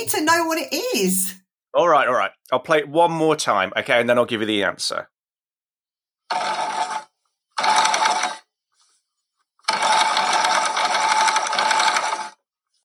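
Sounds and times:
speech: 0.0s - 5.1s, 6.3s - 6.6s
sewing machine whirring: 6.3s - 8.5s, 9.6s - 12.5s.

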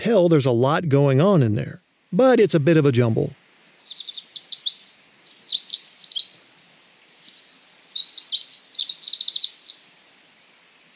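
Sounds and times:
speech: 0.0s - 3.4s
Pacific wren singing a complex song: 2.2s - 10.6s.

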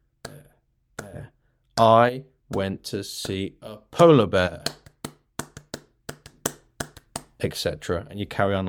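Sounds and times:
hands clapping a quick syllable rhythm: 1.0s - 1.3s, 2.5s - 7.8s
speech: 1.8s - 4.8s, 7.4s - 8.6s.

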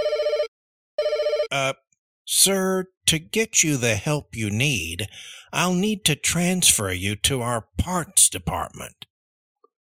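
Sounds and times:
telephone ringing with an electronic trill: 0.0s - 1.7s
speech: 1.5s - 9.1s.

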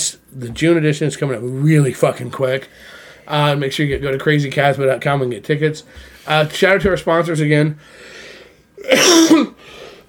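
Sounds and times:
speech: 0.0s - 8.2s, 8.8s - 9.9s
faint breathy noise: 2.6s - 3.3s, 5.8s - 6.6s, 7.8s - 8.8s, 9.6s - 10.0s
person coughing and sputtering: 8.8s - 9.6s.

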